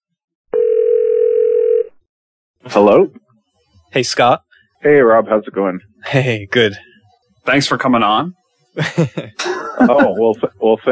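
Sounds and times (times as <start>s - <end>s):
telephone ringback tone on outgoing call: 0.6s - 2.0s
speech: 2.7s - 3.2s, 3.9s - 10.8s
laughter: 8.8s - 10.8s.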